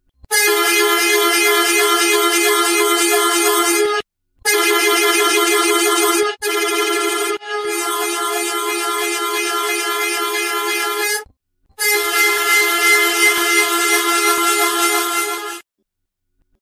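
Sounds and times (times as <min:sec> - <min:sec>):
container truck horn: 0:00.3 - 0:11.2, 0:11.8 - 0:15.6.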